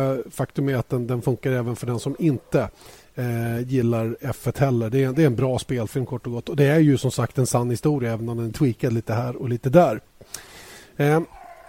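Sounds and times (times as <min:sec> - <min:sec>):
speech: 0:00.0 - 0:11.4
dog whining: 0:02.0 - 0:02.7, 0:11.3 - 0:11.6.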